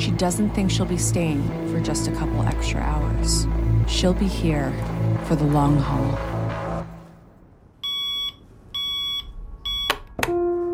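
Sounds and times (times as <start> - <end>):
speech: 0.1 - 6.4
alarm clock beeping: 7.8 - 10.0.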